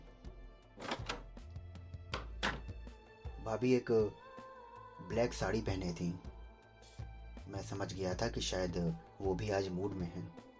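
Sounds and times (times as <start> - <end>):
metal house gate opening with clanking and rattling: 0.8 - 1.3
speech: 3.4 - 4.2, 5.1 - 6.3, 7.5 - 10.5.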